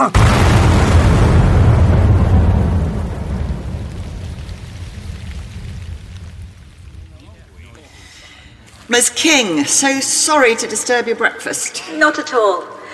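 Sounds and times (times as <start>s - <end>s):
speech: 0.0s - 0.4s, 8.9s - 12.8s
blasting explosive detonating: 0.0s - 10.2s.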